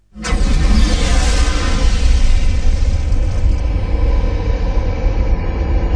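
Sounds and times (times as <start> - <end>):
big powerful whoosh: 0.1 - 5.8.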